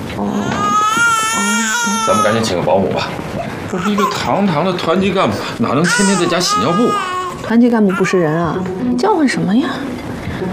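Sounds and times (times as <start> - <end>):
speech: 0.2 - 0.5, 2.1 - 10.5
infant crying: 0.3 - 2.5, 3.7 - 4.9, 5.7 - 8.7.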